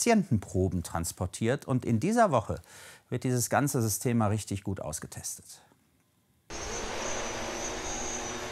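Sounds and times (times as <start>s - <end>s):
speech: 0.0s - 5.7s
delivery drone rotors taking off from a hospital: 6.5s - 8.5s.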